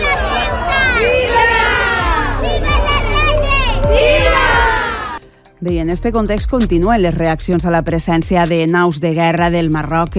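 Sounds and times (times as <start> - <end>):
high excited voices and shouts: 0.0 - 5.2
hundreds of people cheering at the doors of a school: 0.0 - 5.2
speech: 5.6 - 10.1.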